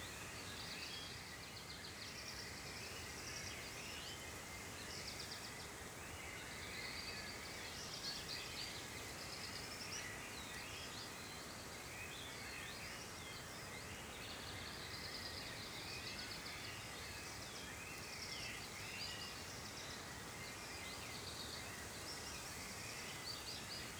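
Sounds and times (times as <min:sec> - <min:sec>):
calm dry forest ambience by day: 0:00.0 - 0:23.9.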